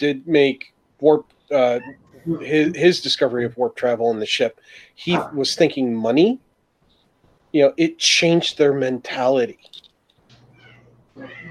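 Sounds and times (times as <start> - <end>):
speech: 0.0 - 6.4, 7.5 - 9.8
cat meowing: 10.5 - 11.4.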